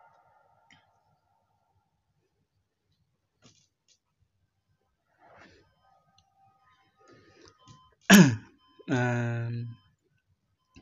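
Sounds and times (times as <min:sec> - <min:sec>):
drawn-out raspy voiced throat sound from woman: 0:08.1 - 0:08.4
mother in a film scene coughing: 0:08.1 - 0:08.4.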